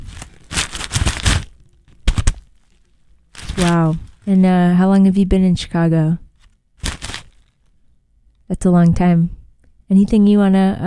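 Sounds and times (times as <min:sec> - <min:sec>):
burrito paper bag crinkling: 0:00.0 - 0:04.4, 0:06.4 - 0:07.7
speech: 0:03.6 - 0:06.2, 0:08.5 - 0:10.8.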